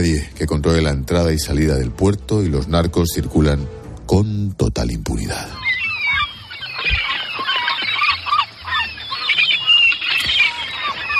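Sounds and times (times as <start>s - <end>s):
speech: 0.0s - 5.6s
seagulls squawking: 5.2s - 11.1s.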